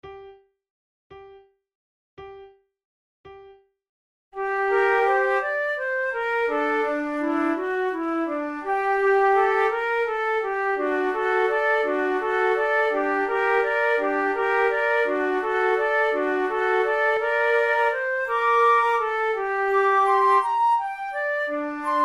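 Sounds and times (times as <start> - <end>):
flute trio playing a largo: 4.4 - 22.0.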